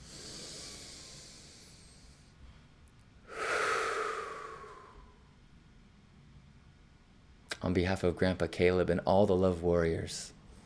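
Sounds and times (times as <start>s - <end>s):
deep breath: 0.0s - 2.6s, 3.2s - 5.3s
speech: 7.7s - 10.4s.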